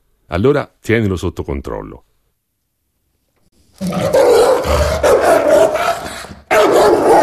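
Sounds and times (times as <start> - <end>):
speech: 0.3 - 2.1
dog giving a low rumbling intimidation growl: 3.8 - 7.2.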